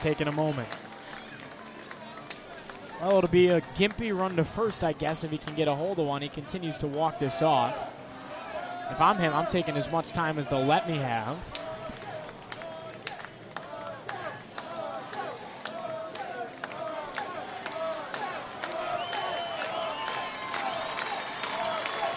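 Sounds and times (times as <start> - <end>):
speech: 0.0 - 0.9, 3.0 - 8.0, 8.9 - 11.6
clapping: 0.0 - 5.6, 11.5 - 22.1
large crowd roaring at a baseball game: 6.9 - 22.1.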